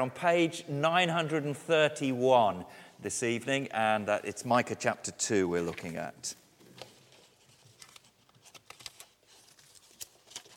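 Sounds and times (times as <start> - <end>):
speech: 0.0 - 6.4
paper sheets rustling and crinkling as they are picked up from the floor: 6.6 - 10.5.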